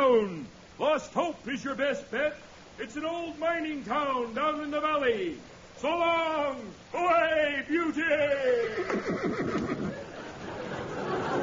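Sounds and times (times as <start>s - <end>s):
noise: 0.0s - 11.4s
speech: 0.1s - 9.7s
horse whinnying: 8.6s - 10.0s
laughter: 9.1s - 11.4s.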